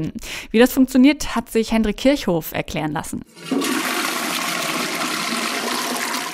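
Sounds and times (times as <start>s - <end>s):
speech: 0.0s - 3.8s
toilet flush click: 3.3s - 6.3s.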